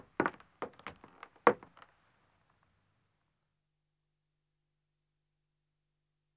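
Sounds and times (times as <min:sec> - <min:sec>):
two men's footsteps ascending wooden stairs: 0:00.2 - 0:01.8.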